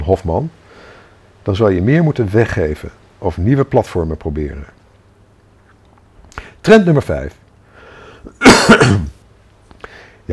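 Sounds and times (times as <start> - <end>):
speech: 0.1 - 0.6, 1.4 - 4.8, 6.6 - 7.4, 8.2 - 9.1
faint breaths: 0.6 - 1.4, 5.6 - 6.6, 7.6 - 8.4, 9.7 - 10.3
person with a hoarse voice coughing: 8.3 - 9.2.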